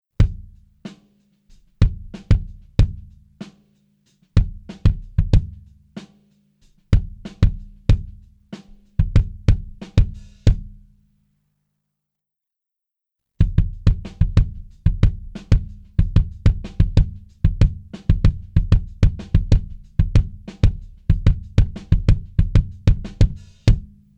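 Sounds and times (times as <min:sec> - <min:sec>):
kick drum: 0:00.2 - 0:00.6, 0:01.8 - 0:03.2, 0:04.4 - 0:05.7, 0:06.9 - 0:08.2, 0:09.0 - 0:10.8, 0:13.4 - 0:24.1.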